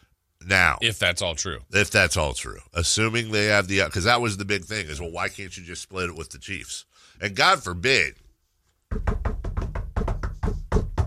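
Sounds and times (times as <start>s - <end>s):
speech: 0.5s - 8.2s, 8.9s - 9.4s
knocking on wood: 8.9s - 11.0s.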